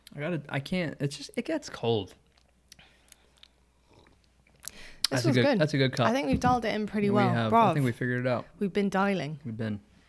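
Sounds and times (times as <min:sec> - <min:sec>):
speech: 0:00.2 - 0:02.2, 0:05.1 - 0:09.9
soft mouth clicks and lip smacks: 0:02.2 - 0:05.2.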